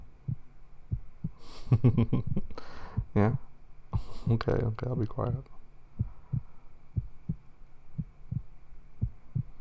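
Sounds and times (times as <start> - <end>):
faint hum: 0.0 - 9.5
human heartbeat: 0.2 - 3.2, 6.0 - 9.5
speech: 1.7 - 3.5, 4.3 - 5.5.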